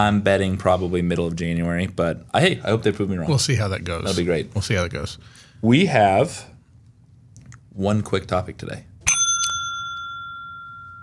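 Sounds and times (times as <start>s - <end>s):
speech: 0.0s - 6.5s, 7.8s - 8.9s
low hum: 0.0s - 11.0s
bicycle bell ding: 9.1s - 11.0s.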